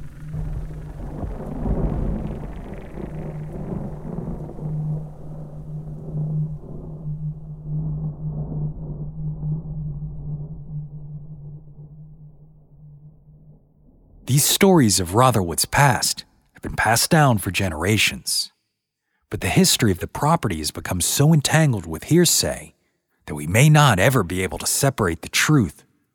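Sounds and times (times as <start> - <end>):
rolling thunder: 0.0 - 10.6
speech: 14.4 - 18.5, 19.3 - 26.1.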